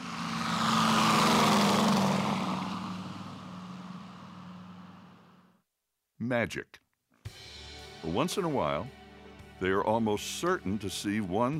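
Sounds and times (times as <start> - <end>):
propeller airplane engine droning while taking off: 0.0 - 5.5
speech: 6.3 - 6.8, 8.0 - 9.0, 9.6 - 11.5.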